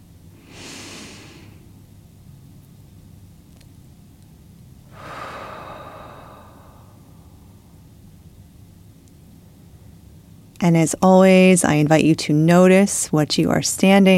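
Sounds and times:
slow deep breath during a guided meditation: 0.4 - 1.7, 4.9 - 7.7
speech: 10.6 - 14.1.

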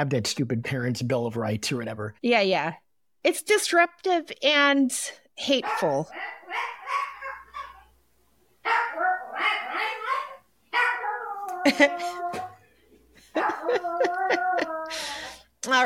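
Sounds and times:
speech: 0.0 - 6.8, 11.6 - 12.3, 15.6 - 15.8
dog barking: 5.6 - 7.9, 8.6 - 11.2
dog yapping: 5.6 - 7.9, 8.6 - 11.8
laughter: 13.0 - 15.2.

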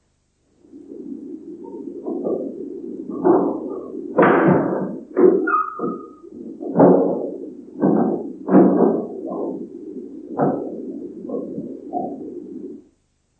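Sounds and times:
steady low hum: 0.0 - 13.3
scrapes: 0.6 - 12.9
irregular thudding footsteps: 0.7 - 12.8
door creak: 5.2 - 7.0.

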